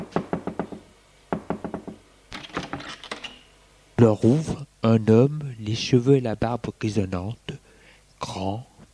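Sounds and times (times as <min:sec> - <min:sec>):
knocking on a hotel room door: 0:00.0 - 0:02.0
speech: 0:04.0 - 0:07.5, 0:08.3 - 0:08.9.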